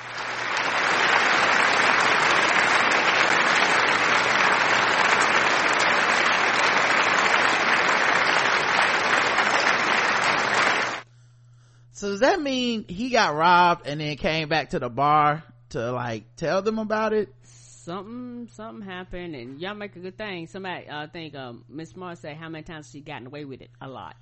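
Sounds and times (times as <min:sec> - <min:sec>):
crowd applause: 0:00.0 - 0:11.0
speech: 0:12.2 - 0:24.2.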